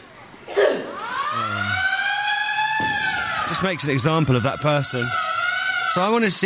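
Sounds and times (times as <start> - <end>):
alarm siren going off: 0.8 - 6.4
brief thud: 2.7 - 3.6
speech: 3.5 - 5.3, 5.9 - 6.4.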